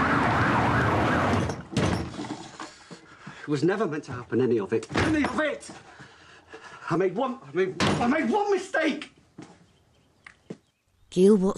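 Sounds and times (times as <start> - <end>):
wailing siren of unmarked car: 0.0 - 1.6
road noise: 0.0 - 3.5
speech: 3.5 - 6.0, 6.9 - 9.1, 11.1 - 11.5.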